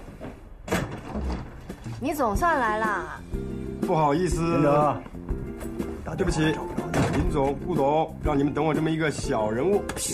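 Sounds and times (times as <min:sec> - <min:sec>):
door being opened: 0:00.6 - 0:01.8, 0:06.8 - 0:07.5
speech: 0:02.0 - 0:03.4, 0:03.9 - 0:05.1, 0:06.2 - 0:10.1.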